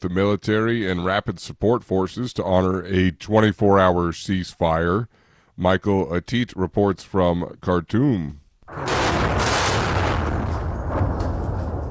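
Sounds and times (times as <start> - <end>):
speech: 0.0 - 9.0
airstrike explosion near military headquarters: 8.7 - 11.8.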